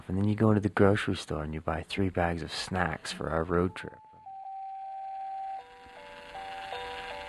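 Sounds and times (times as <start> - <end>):
soft hiss: 0.0 - 7.2
speech: 0.1 - 4.0
baby's musical mobile playing a simple tinkling tune in a car: 3.7 - 7.2.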